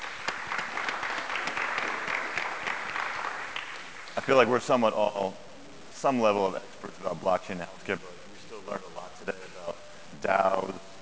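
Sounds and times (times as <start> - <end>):
audience applause at conference session: 0.0 - 4.8
speech: 4.2 - 5.4, 6.0 - 9.3, 10.2 - 10.9.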